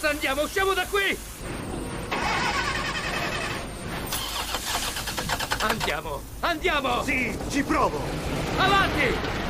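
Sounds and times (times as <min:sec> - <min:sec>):
speech: 0:00.0 - 0:01.8, 0:05.6 - 0:09.4
car engine starting: 0:02.1 - 0:06.2.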